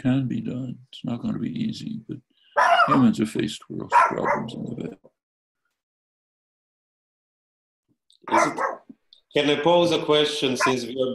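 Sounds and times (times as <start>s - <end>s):
speech: 0.0s - 5.1s, 8.2s - 8.7s, 9.3s - 11.1s
drawn-out dog bark: 2.6s - 3.2s, 3.9s - 4.6s, 8.3s - 8.9s, 10.5s - 10.9s.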